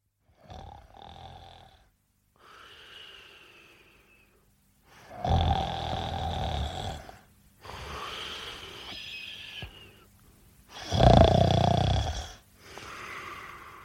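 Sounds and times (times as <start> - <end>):
man snoring in bed: 0.4 - 1.9, 5.1 - 9.7, 10.7 - 12.4.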